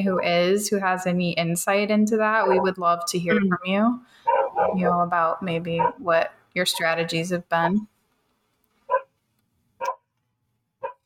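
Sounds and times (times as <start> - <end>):
speech: 0.0 - 7.9
dog barking: 2.4 - 2.8, 4.2 - 4.8, 5.8 - 6.0, 8.9 - 9.1, 9.8 - 10.0, 10.8 - 11.0.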